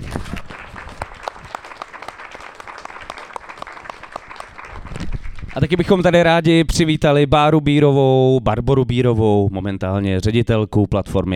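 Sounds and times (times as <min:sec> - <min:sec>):
audience applauding: 0:00.0 - 0:05.9
speech: 0:05.6 - 0:11.3.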